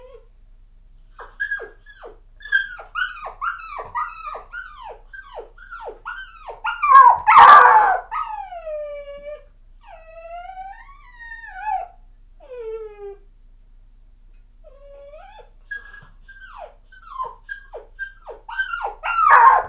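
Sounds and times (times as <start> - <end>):
puppy giving falling quavering whines and short howls: 0.0 - 0.3, 1.0 - 13.2, 14.6 - 19.6
puppy giving a harsh yelp: 1.0 - 8.5, 15.2 - 19.6.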